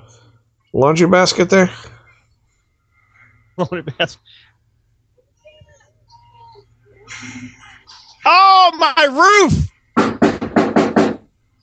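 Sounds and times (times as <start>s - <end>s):
speech: 0.7s - 2.0s, 3.6s - 4.5s, 7.1s - 7.6s, 8.2s - 9.7s
knocking on a house door: 10.0s - 11.3s.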